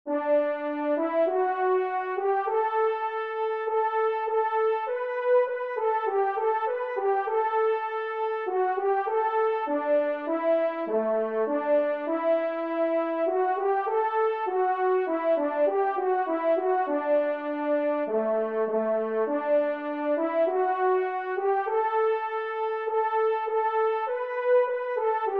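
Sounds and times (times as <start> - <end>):
entrance piece in C major: 0.1 - 25.3.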